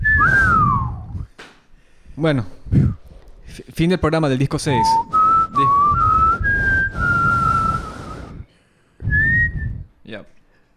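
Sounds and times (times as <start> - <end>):
person whistling a tune: 0.0 - 1.3, 4.7 - 8.4, 9.0 - 9.9
speech: 2.2 - 5.9.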